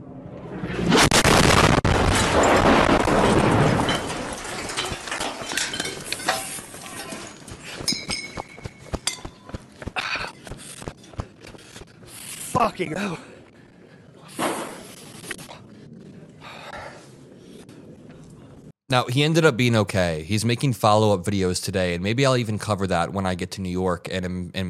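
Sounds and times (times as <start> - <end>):
rocket strike explosion: 0.5 - 5.0
falling debris clinking and clattering: 1.1 - 9.5
speech: 12.6 - 13.2, 18.9 - 24.6.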